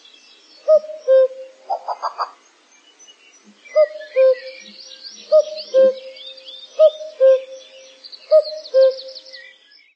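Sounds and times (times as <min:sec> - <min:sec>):
high chattering birdsong: 0:00.0 - 0:09.9
common cuckoo giving two-note falling call: 0:00.6 - 0:02.3, 0:03.5 - 0:09.5.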